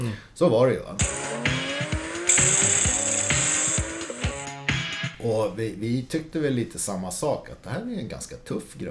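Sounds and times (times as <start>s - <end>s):
speech: 0.1s - 1.5s, 5.2s - 8.9s
turbocharged car engine revving through gear shifts: 1.0s - 4.8s.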